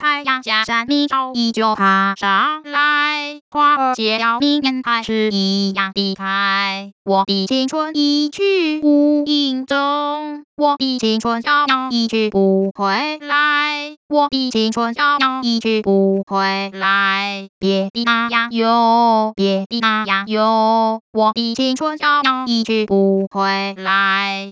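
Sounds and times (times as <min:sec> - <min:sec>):
synthetic female singing voice in Mandarin Chinese: 0:00.0 - 0:24.5.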